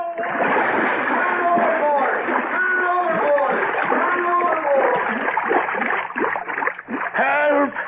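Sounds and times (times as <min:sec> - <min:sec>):
water churning and thrashing: 0:00.1 - 0:07.8
heavy splash of a man falling overboard from a boat: 0:00.2 - 0:07.4
man calling out: 0:01.2 - 0:05.1, 0:07.2 - 0:07.8.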